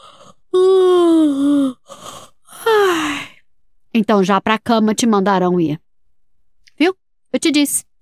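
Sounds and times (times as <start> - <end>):
person yawning: 0.0 - 3.4
speech: 4.0 - 5.8, 6.8 - 8.0.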